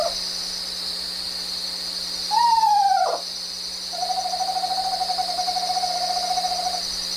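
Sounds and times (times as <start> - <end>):
steady high insect-like hum: 0.0 - 7.1
Eastern Screech Owl whinny and monotone trill: 2.3 - 3.3, 3.9 - 6.9.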